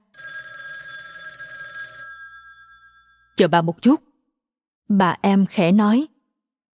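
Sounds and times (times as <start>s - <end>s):
telephone bell ringing: 0.0s - 3.5s
speech: 3.4s - 4.1s, 4.9s - 6.1s.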